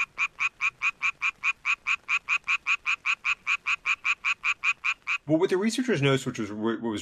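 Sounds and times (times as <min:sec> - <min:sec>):
male Japanese tree frog mating call: 0:00.0 - 0:05.5
speech: 0:05.3 - 0:07.0.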